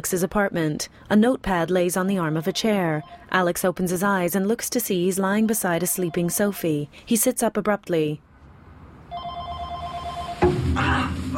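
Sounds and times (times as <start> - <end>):
speech: 0.0 - 8.3
telephone ringing with an electronic trill in an apartment: 2.2 - 3.3, 5.2 - 6.6, 9.1 - 10.4
sharp knock: 10.4 - 10.9.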